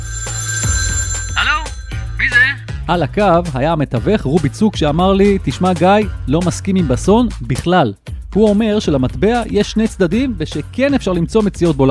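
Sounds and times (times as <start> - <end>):
telephone ringing with warbling electronic bursts: 0.0 - 2.8
speech: 2.9 - 11.8.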